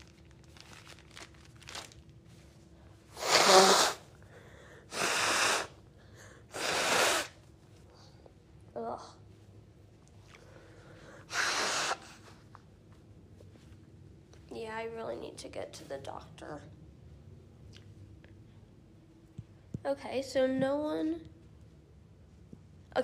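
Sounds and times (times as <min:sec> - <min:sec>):
person blowing nose: 0:03.1 - 0:04.1, 0:04.9 - 0:05.8, 0:06.5 - 0:07.4, 0:11.3 - 0:12.3
soft sniffs: 0:03.1 - 0:04.1, 0:04.9 - 0:05.8, 0:06.5 - 0:07.4, 0:11.1 - 0:12.5
speech: 0:14.9 - 0:16.8, 0:19.9 - 0:21.3.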